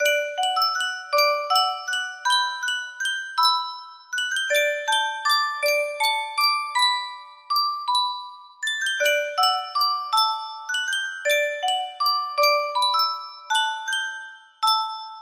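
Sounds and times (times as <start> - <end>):
Yunsheng music box playing: 0.0 - 15.2.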